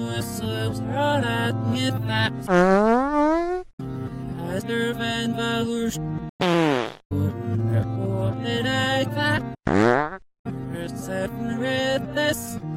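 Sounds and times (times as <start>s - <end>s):
music: 0.0s - 2.5s, 3.8s - 6.3s, 7.1s - 9.6s, 10.5s - 12.7s
fart sound effects: 2.5s - 3.7s, 6.4s - 7.0s, 9.6s - 10.2s.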